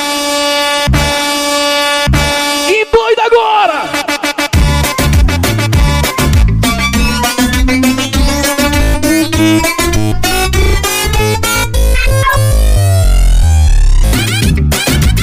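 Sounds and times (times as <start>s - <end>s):
truck air horns blasting from a convoy of rigs: 0.0s - 2.7s
pounding dance music: 0.0s - 15.2s.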